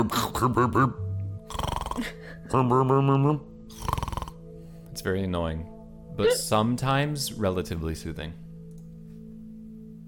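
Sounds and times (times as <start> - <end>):
speech: 0.0 - 1.0, 2.0 - 3.9, 5.0 - 8.4
person vocally imitating frog-like snoring: 1.4 - 4.4
breathy inhale sounds: 3.7 - 4.9.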